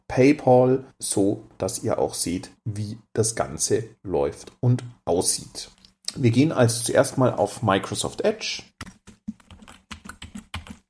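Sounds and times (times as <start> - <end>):
speech: 0.1 - 8.8
keys pressed on a computer keyboard: 8.8 - 10.8.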